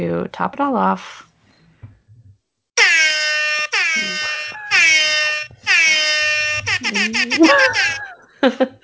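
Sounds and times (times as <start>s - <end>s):
speech: 0.0s - 1.3s, 6.9s - 8.8s
air horn sound effect blasts: 2.8s - 8.0s
person laughing or talking: 4.0s - 5.0s, 6.6s - 8.8s.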